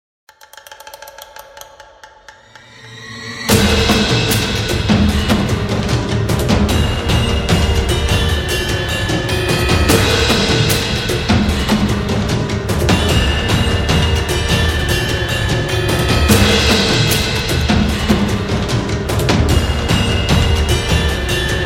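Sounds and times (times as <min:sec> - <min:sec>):
suspended cymbals: 0:02.3 - 0:21.6.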